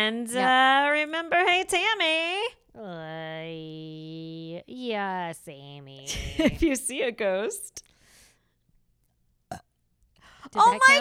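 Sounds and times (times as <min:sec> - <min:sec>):
speech: 0:00.0 - 0:07.9, 0:10.5 - 0:10.9
faint breathy sounds: 0:07.8 - 0:08.7, 0:10.2 - 0:10.6
short loud burp: 0:09.5 - 0:09.8.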